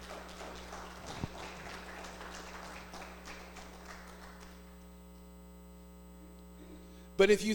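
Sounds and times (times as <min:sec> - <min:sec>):
audience applauding: 0:00.0 - 0:04.8
steady electrical hum: 0:00.0 - 0:07.5
speech: 0:07.2 - 0:07.5.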